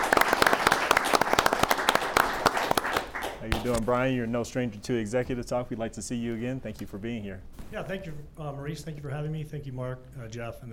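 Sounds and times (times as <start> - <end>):
audience applause at a chamber of commerce event: 0.0 - 3.6
speech: 3.6 - 10.7.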